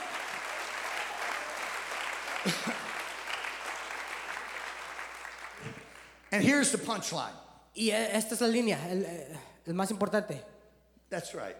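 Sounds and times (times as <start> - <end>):
congregation applauding: 0.0 - 6.5
speech: 2.4 - 2.9, 6.4 - 10.5, 11.1 - 11.5.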